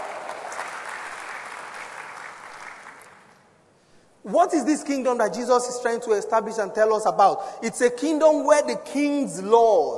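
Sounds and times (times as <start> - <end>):
church audience applause: 0.0 - 3.3
speech: 4.2 - 9.9.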